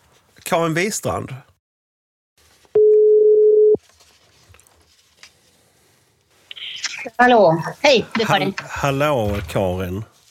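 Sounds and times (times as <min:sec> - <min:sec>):
speech: 0:00.5 - 0:01.5, 0:07.2 - 0:10.1
telephone ringing tone while placing call: 0:02.8 - 0:03.8.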